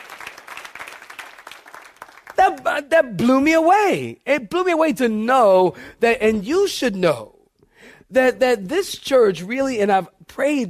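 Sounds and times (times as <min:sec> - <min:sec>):
church audience applause: 0:00.0 - 0:02.4
speech: 0:02.5 - 0:07.4, 0:08.1 - 0:10.6.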